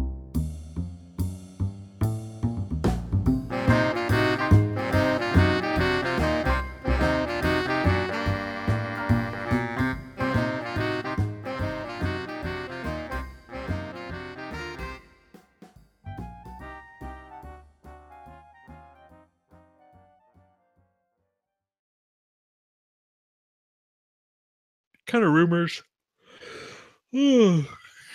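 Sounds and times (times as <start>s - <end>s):
smooth jazz music: 0.0s - 15.3s, 16.1s - 20.1s
speech: 25.1s - 25.9s, 27.1s - 27.8s
person yawning: 26.3s - 28.1s.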